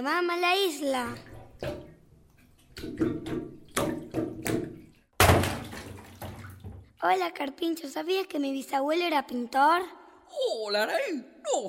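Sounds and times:
speech: 0.0 - 1.9, 2.8 - 3.6, 7.0 - 11.6
water splashing and running while someone bathes: 1.0 - 7.0.

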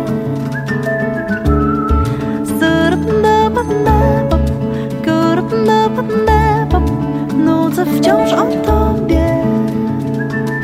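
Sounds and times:
instrumental backing: 0.0 - 10.6
whistled melody within a song: 0.1 - 2.9, 8.0 - 10.6.

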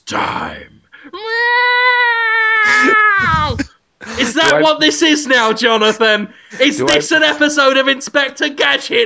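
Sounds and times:
speech: 0.1 - 1.2, 4.2 - 9.0
person imitating a cat meow: 1.2 - 3.7.

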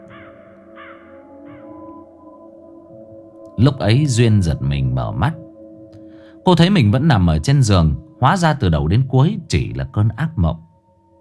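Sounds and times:
crow cawing: 0.0 - 2.0
speech: 3.6 - 5.4, 6.4 - 10.6.

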